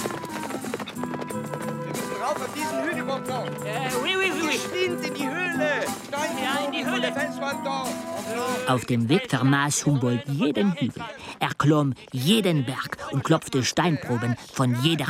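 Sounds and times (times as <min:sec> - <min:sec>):
hooves of ridden horses clip-clopping: 0:00.0 - 0:05.2
loud music: 0:01.4 - 0:10.4
speech: 0:02.3 - 0:15.0.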